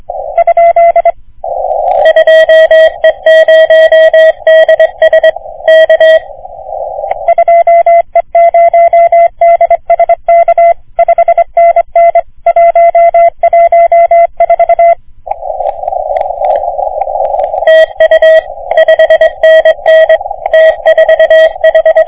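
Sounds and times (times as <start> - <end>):
CW morse code signal on 3.5MHz radio: 0.1 - 22.0.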